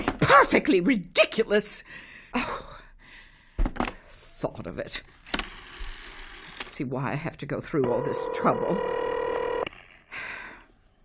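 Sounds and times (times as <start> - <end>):
speech: 0.3 - 2.8, 4.4 - 5.3, 6.8 - 9.0
old-fashioned telephone ringing: 7.7 - 10.0.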